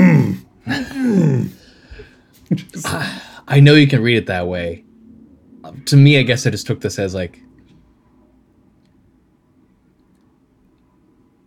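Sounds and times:
voice imitating an indignant throat clearing: 0:00.0 - 0:01.7, 0:02.6 - 0:03.3
speech: 0:03.0 - 0:04.9, 0:05.7 - 0:07.5.

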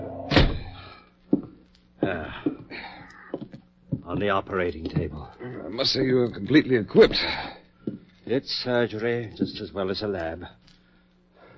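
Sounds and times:
door being kicked shut with a heavy thunk: 0:00.2 - 0:00.9
lighter knocks and bumps of the door settling: 0:00.3 - 0:00.8
speech: 0:02.1 - 0:02.8, 0:04.1 - 0:07.6, 0:08.3 - 0:10.6.

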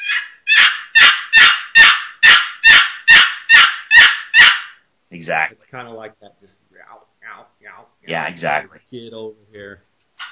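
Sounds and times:
raspy hen turkey yelps on a box call: 0:00.0 - 0:04.8
speech: 0:05.3 - 0:09.9.

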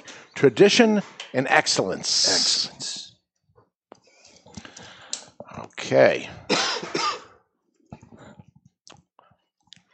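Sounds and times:
speech: 0:00.4 - 0:02.9, 0:05.9 - 0:06.6
loud cough into microphone: 0:06.5 - 0:07.4.

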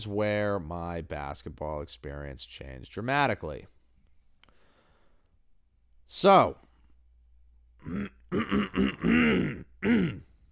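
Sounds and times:
speech: 0:00.0 - 0:03.8, 0:06.1 - 0:06.7, 0:07.8 - 0:10.3
exaggerated deliberate throat clearing: 0:07.8 - 0:10.4.

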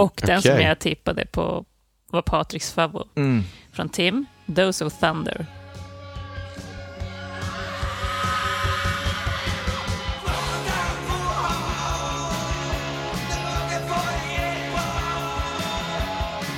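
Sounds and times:
speech: 0:00.0 - 0:05.6
punk rock track with shouted vocals, distorted guitars and pounding drums: 0:05.0 - 0:16.5.

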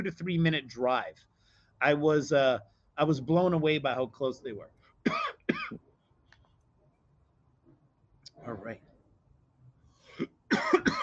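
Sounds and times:
speech: 0:00.0 - 0:05.9, 0:08.4 - 0:08.9, 0:10.2 - 0:10.8
person coughing: 0:05.0 - 0:05.8, 0:10.1 - 0:11.0.

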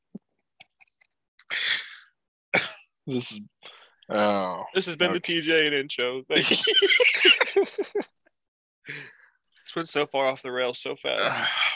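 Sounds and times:
person coughing harshly: 0:02.6 - 0:02.8
speech: 0:03.1 - 0:08.2, 0:09.8 - 0:11.7
laughter: 0:06.4 - 0:08.1.

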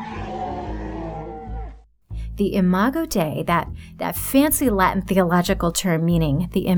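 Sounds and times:
elephant trumpeting sound effect: 0:00.0 - 0:01.8
speech: 0:02.4 - 0:06.7.

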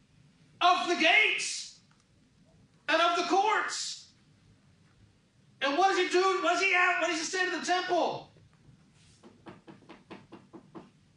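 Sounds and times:
speech: 0:00.6 - 0:01.6, 0:02.9 - 0:04.0, 0:05.6 - 0:08.3
knocking on a hard surface: 0:09.2 - 0:11.0.

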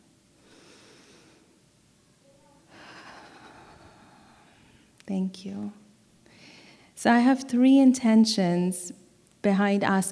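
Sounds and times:
group taking a deep breath together during a sermon: 0:00.4 - 0:01.6, 0:02.7 - 0:05.0, 0:06.2 - 0:07.0
speech: 0:05.1 - 0:05.8, 0:07.0 - 0:10.1.

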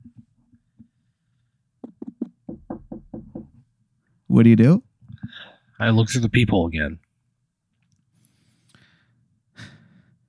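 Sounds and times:
knocking on a door: 0:01.8 - 0:03.7
speech: 0:04.4 - 0:04.9, 0:05.8 - 0:07.0.

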